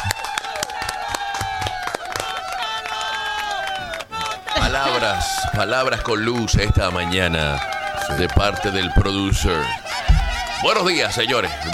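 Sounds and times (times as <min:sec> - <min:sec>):
applause with many hands clapping: 0:00.0 - 0:09.2
crowd cheering: 0:00.0 - 0:11.7
laughter: 0:02.6 - 0:11.7
speech: 0:05.0 - 0:11.7.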